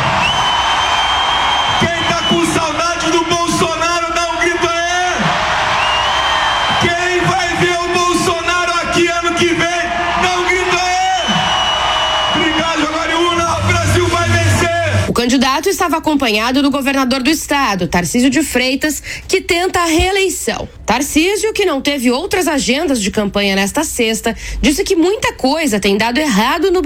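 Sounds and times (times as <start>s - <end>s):
large crowd at a political campaign rally in Brazil shouting and cheering: 0.0s - 15.2s
speech: 15.2s - 26.8s.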